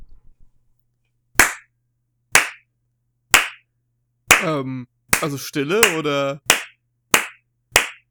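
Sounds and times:
sharp loud hand claps: 0:01.4 - 0:01.7, 0:02.4 - 0:02.6, 0:03.3 - 0:03.6, 0:04.3 - 0:04.5, 0:05.1 - 0:08.1
speech: 0:04.4 - 0:06.5.

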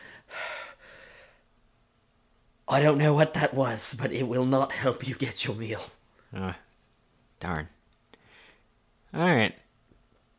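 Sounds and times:
heavy breathing: 0:00.0 - 0:01.4
speech: 0:02.7 - 0:06.6, 0:07.4 - 0:07.8, 0:09.1 - 0:09.6.

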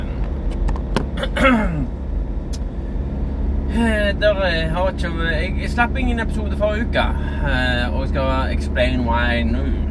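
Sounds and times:
road and engine rumble inside a moving car: 0:00.0 - 0:09.8
speech: 0:01.4 - 0:02.0, 0:03.8 - 0:09.8.

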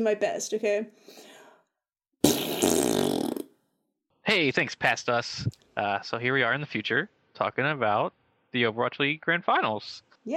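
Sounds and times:
speech: 0:00.0 - 0:01.3, 0:04.3 - 0:10.3
buzzy fart noise blown with the mouth: 0:02.2 - 0:03.6.

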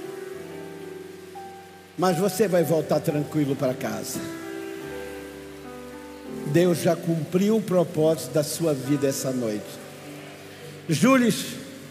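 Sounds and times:
heavy rain pouring: 0:00.0 - 0:11.8
speech: 0:02.0 - 0:04.5, 0:06.5 - 0:09.8, 0:10.9 - 0:11.6.

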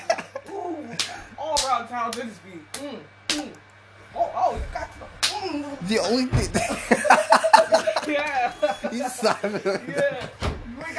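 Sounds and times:
laughter: 0:00.0 - 0:01.4, 0:06.4 - 0:10.9
sharp slaps: 0:01.0 - 0:03.6, 0:05.2 - 0:05.5
speech: 0:01.7 - 0:10.9.

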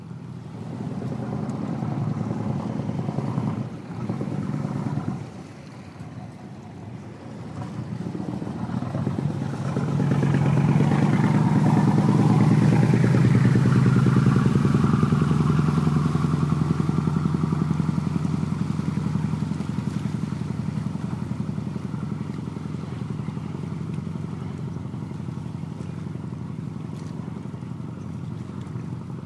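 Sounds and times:
boat motor humming: 0:00.0 - 0:29.2
faint rushing wash: 0:00.0 - 0:29.2.

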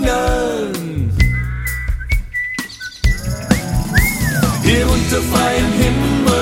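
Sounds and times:
musical backing with bass and strummed instruments: 0:00.1 - 0:06.4
whistled melody: 0:01.2 - 0:05.2.

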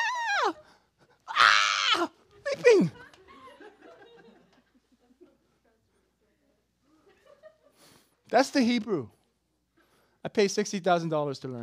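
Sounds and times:
person imitating an ecstatic horse shriek: 0:00.0 - 0:00.6, 0:01.3 - 0:02.9
speech: 0:00.4 - 0:00.6, 0:08.3 - 0:09.2, 0:10.2 - 0:11.6
laughter: 0:02.4 - 0:05.8, 0:06.9 - 0:08.0.

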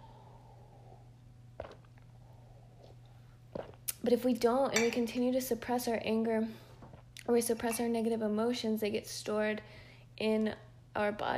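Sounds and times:
steady low electrical hum: 0:00.0 - 0:11.3
sip of water: 0:01.6 - 0:04.0
speech: 0:04.0 - 0:06.6, 0:07.3 - 0:11.3.

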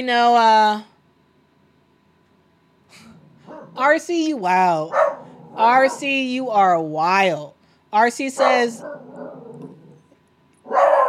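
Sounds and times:
speech: 0:00.0 - 0:00.9, 0:03.8 - 0:09.4
dog growling: 0:02.9 - 0:03.9, 0:04.9 - 0:06.2, 0:08.4 - 0:11.0
dog barking: 0:03.4 - 0:03.8, 0:04.9 - 0:06.2, 0:08.4 - 0:09.7, 0:10.6 - 0:11.0.

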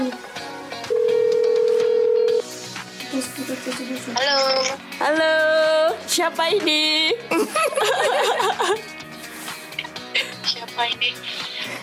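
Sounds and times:
faint music: 0:00.0 - 0:11.8
telephone ringback tone from an outgoing call: 0:00.9 - 0:02.4
speech: 0:04.0 - 0:05.4, 0:06.2 - 0:09.0, 0:10.8 - 0:11.8
laughter: 0:07.3 - 0:08.9.

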